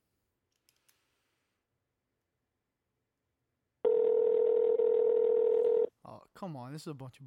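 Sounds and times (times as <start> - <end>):
telephone ringback tone on a call to a mobile line: 3.9 - 5.9
speech: 6.4 - 7.2.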